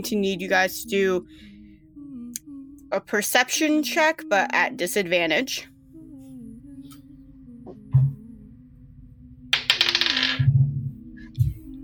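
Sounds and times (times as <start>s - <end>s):
speech: 0.0s - 1.5s, 2.9s - 5.7s
soft low thumps: 7.6s - 8.4s
dice clattering across a hard surface: 9.6s - 10.5s.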